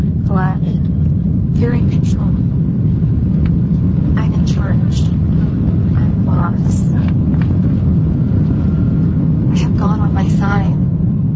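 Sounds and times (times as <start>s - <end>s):
airplane cabin engine rumble as the plane taxis and accelerates on the runway: 0.0s - 11.3s.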